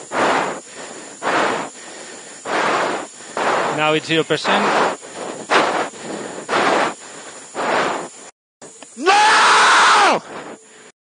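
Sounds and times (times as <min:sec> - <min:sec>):
crackly radio-like hiss: 0:00.0 - 0:09.0, 0:10.1 - 0:10.9
speech: 0:03.8 - 0:05.0
Formula 1 driver screaming over team radio: 0:09.0 - 0:10.2.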